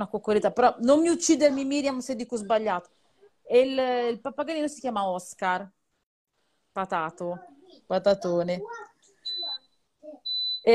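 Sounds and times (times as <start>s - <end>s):
speech: 0.0s - 5.8s, 6.8s - 8.9s
high steady electronic dishwasher alert beeps: 9.3s - 9.6s, 10.3s - 10.7s.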